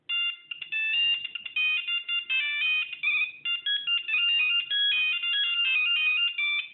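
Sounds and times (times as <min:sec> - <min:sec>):
Nokia 1100 ringtone: 0:00.0 - 0:06.7.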